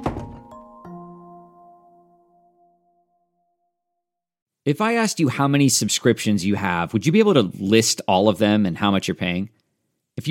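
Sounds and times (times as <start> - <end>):
door shutting with a solid thunk: 0.0 - 0.6
quick knocks: 0.0 - 0.6
speech: 4.7 - 9.6.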